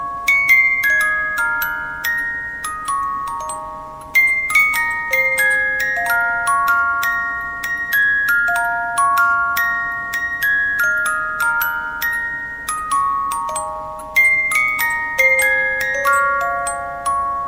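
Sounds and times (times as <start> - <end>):
music box melody: 0.0 - 17.4.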